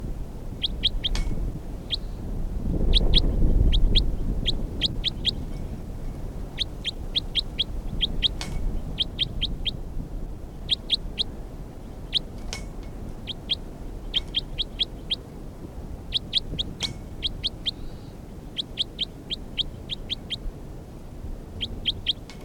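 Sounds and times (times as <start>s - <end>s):
faint low hiss: 0.0s - 22.4s
bird calls from a field recording: 0.6s - 2.2s, 2.9s - 5.8s, 6.5s - 9.8s, 10.5s - 15.3s, 16.1s - 20.5s, 21.6s - 22.4s.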